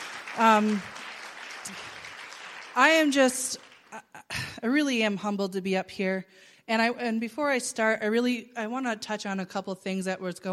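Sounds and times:
crowd clapping: 0.0s - 4.0s
speech: 0.4s - 1.0s, 1.7s - 1.9s, 2.8s - 10.5s.

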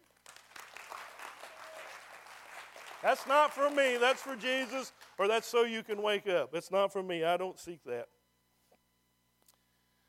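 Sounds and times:
crowd applause: 0.0s - 5.3s
speech: 3.0s - 8.2s.

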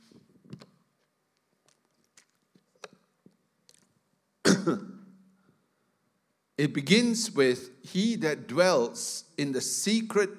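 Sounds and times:
mouth and swallowing sounds of someone sipping water: 1.4s - 4.0s
person clearing throat: 4.4s - 5.1s
speech: 4.7s - 4.9s, 6.6s - 10.3s.

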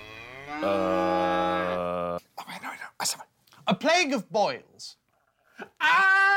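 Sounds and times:
cow mooing: 0.0s - 2.2s
speech: 0.6s - 1.0s, 3.8s - 5.0s.

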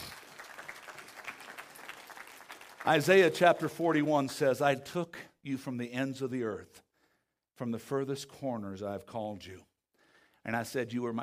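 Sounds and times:
crowd clapping: 0.0s - 4.3s
speech: 2.8s - 6.8s, 7.6s - 9.7s, 10.4s - 11.2s.

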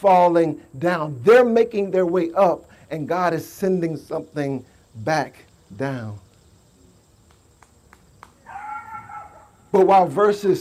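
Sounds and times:
speech: 0.0s - 6.2s, 9.7s - 10.5s
dog yipping and howling: 8.4s - 9.7s.

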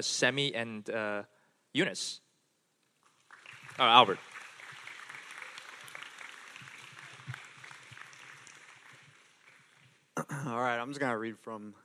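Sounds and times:
speech: 0.0s - 2.2s, 3.8s - 4.3s, 10.2s - 11.8s
audience clapping to welcome speakers: 3.2s - 10.0s.

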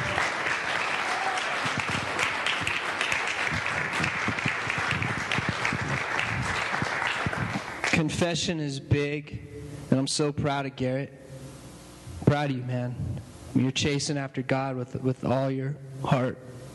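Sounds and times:
crowd applauding a man after a prayer: 0.0s - 8.1s
speech: 8.0s - 11.2s, 12.3s - 16.6s.

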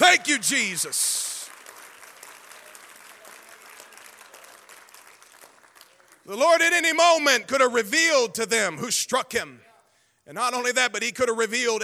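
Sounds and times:
speech: 0.0s - 1.3s, 6.3s - 9.7s, 10.3s - 11.8s
audience applause: 0.0s - 6.3s.

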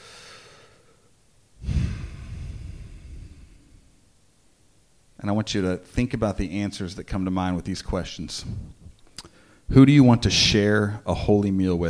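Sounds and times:
deep breath in through the mouth and out through the nose during a seated relaxation exercise: 0.0s - 4.2s, 8.4s - 9.7s
speech: 5.2s - 8.8s, 9.7s - 11.8s.

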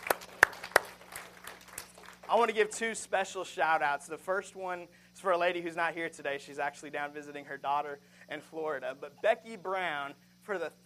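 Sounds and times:
scattered hand claps from a congregation: 0.0s - 2.7s
speech: 2.3s - 10.8s.

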